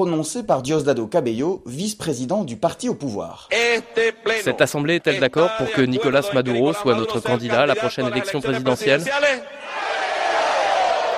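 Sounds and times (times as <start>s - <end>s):
speech: 0.0s - 9.6s
crowd cheering in acclaim at a ruling-party assembly in Venezuela: 9.6s - 11.1s.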